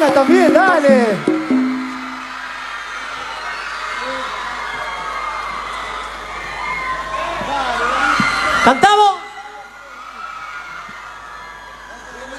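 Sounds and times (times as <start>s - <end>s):
speech: 0.0s - 1.3s, 8.6s - 9.1s
large crowd applauding: 0.0s - 8.9s
large crowd cheering with shouts and whoops: 0.0s - 12.3s.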